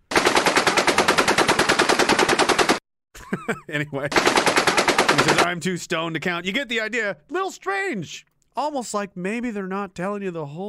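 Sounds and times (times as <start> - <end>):
automatic gunfire: 0.1 - 2.8, 4.1 - 5.5
speech: 3.3 - 10.6.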